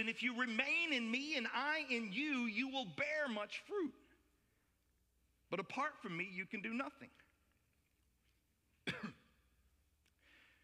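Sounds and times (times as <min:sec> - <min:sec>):
speech: 0:00.0 - 0:04.0, 0:05.5 - 0:07.2
deliberate fake cough: 0:08.8 - 0:09.4.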